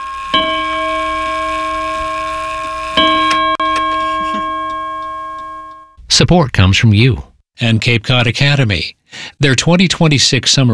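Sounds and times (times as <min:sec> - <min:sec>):
clock chiming: 0:00.0 - 0:06.0
speech: 0:06.2 - 0:10.7.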